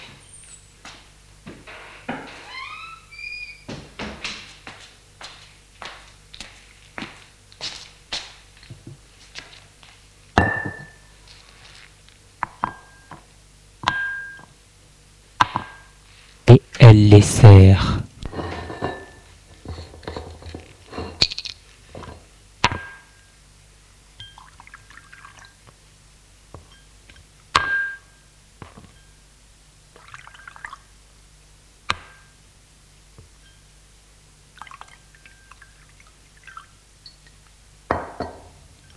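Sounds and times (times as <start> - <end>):
wooden sideboard door creaking open: 1.6 - 4.4
bottle and three glasses set down on a table: 10.4 - 11.0, 37.9 - 38.6
glassware clinking: 10.4 - 11.1, 12.6 - 13.2, 13.8 - 14.5, 18.4 - 23.3, 27.6 - 28.2, 36.5 - 38.9
speech: 16.8 - 18.0.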